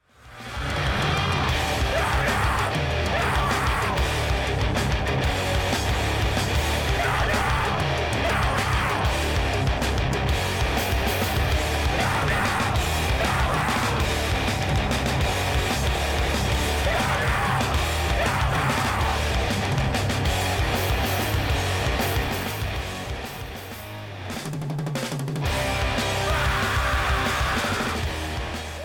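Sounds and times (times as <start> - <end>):
distorted guitars: 0.0 - 28.8
loud dense hardcore music: 0.0 - 28.8
shrill screamed vocal: 0.4 - 4.3, 6.8 - 9.6, 11.7 - 14.4, 16.6 - 19.5, 26.0 - 28.8.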